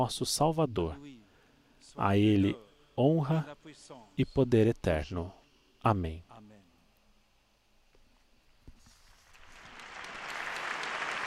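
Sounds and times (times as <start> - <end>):
speech: 0.0 - 1.2, 1.8 - 6.3
large crowd of young people applauding at a vigil in the Saint-Denis stadium: 9.3 - 11.2.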